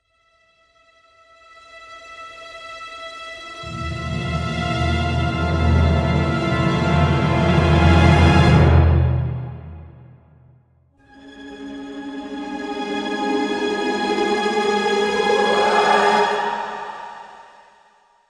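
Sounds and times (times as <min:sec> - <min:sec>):
peak tension music: 0:03.6 - 0:10.5, 0:11.1 - 0:18.0.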